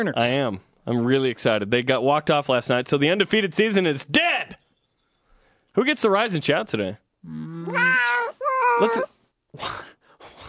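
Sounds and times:
speech: 0.0 - 4.6, 5.8 - 10.0
drawn-out wavering yowls: 7.6 - 9.1.

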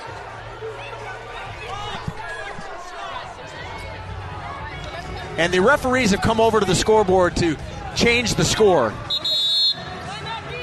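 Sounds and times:
arena crowd booing a referee's blocking-foul call: 0.0 - 4.6
speech: 5.4 - 9.1.

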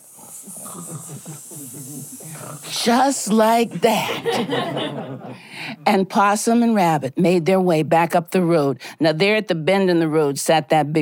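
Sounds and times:
voice imitating a sleeping snake's hiss with snore-like rumbles: 0.0 - 4.3
laughter: 0.5 - 5.5
speech: 0.8 - 11.0.

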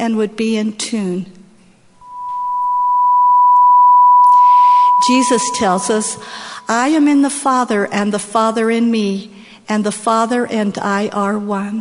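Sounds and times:
speech: 0.0 - 1.4, 5.1 - 11.7
steady pure sine tone at a single pitch: 2.0 - 7.2.

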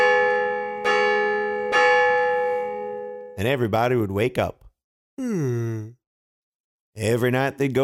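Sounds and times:
great big bell in a town tower ringing: 0.0 - 3.4
speech: 3.4 - 4.6, 5.2 - 6.0, 7.0 - 7.8.

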